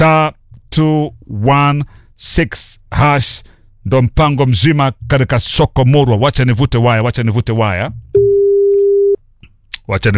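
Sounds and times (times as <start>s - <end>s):
speech: 0.0s - 8.3s, 9.9s - 10.1s
telephone line tone: 8.2s - 9.2s.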